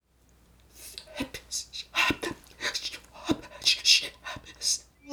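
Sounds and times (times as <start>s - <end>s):
voice: 0.8s - 4.8s.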